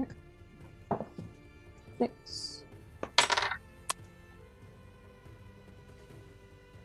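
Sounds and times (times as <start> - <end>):
dice rolling across a hard tabletop: 3.0 - 3.6.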